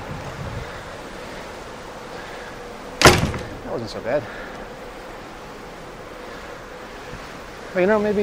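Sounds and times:
rushing wind on the open deck of a ship: 0.0 - 7.7
loud thud: 3.0 - 3.7
speech: 3.7 - 4.5, 7.7 - 8.2.

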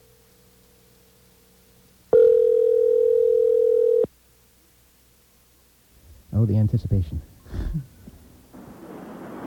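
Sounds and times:
telephone dial tone after a number is dialed: 2.2 - 4.1
speech: 6.4 - 8.0.

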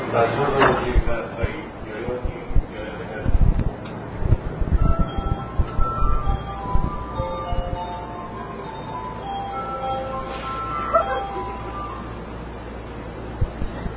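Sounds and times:
crowded commuter train low rumble in Tokyo: 0.0 - 13.9
soft chiming tones in a train carriage: 4.7 - 13.2.

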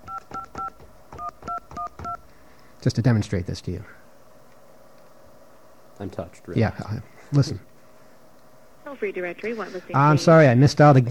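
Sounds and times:
touch-tone telephone dialing beeps: 0.0 - 2.2
speech: 2.8 - 4.0, 6.0 - 7.7, 8.9 - 11.0.

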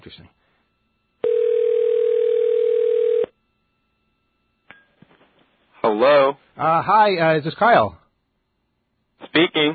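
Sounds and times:
speech: 0.1 - 0.4, 6.0 - 8.0, 9.3 - 9.7
telephone ringing on the called line: 1.2 - 3.4.

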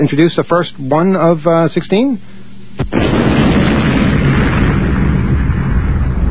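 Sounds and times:
speech: 0.0 - 3.1
loud explosion: 2.8 - 6.2
roaring rumble of debris: 3.0 - 6.2.

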